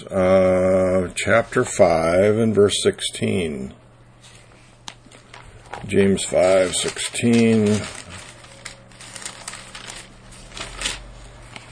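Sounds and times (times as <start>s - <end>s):
speech: 0.0s - 3.8s, 5.8s - 8.0s
rustling of book pages being turned: 4.2s - 11.7s.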